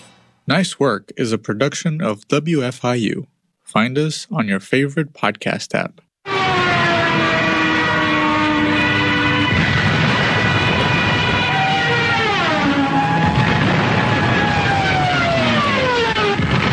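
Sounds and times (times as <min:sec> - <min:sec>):
speech: 0:00.5 - 0:06.0
wing-mounted sirens of German World War II Stuka dive bombers screaming: 0:06.2 - 0:16.7
dense engine roar of Stuka dive bombers: 0:06.3 - 0:16.7.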